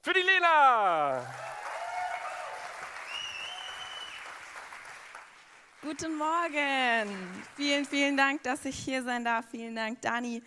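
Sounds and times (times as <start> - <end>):
speech: 0.0 - 1.5, 5.8 - 10.4
large audience applause: 1.2 - 8.7
faint audience whistles: 3.1 - 4.3.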